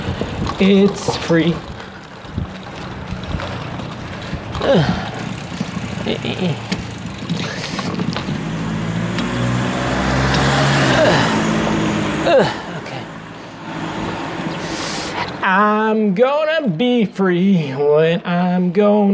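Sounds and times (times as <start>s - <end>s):
wind buffeting the microphone: 0.0s - 10.3s
car engine approaching along a street in a residential neighborhood: 0.0s - 16.8s
speech: 0.6s - 1.7s, 4.6s - 5.0s, 6.1s - 6.8s, 12.3s - 12.6s, 15.9s - 19.1s.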